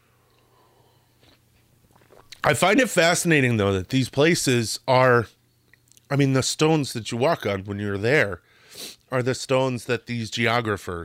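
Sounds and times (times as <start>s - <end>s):
low hum: 0.0s - 11.0s
person sipping coffee: 0.3s - 2.4s
speech: 2.4s - 5.4s, 6.1s - 11.0s.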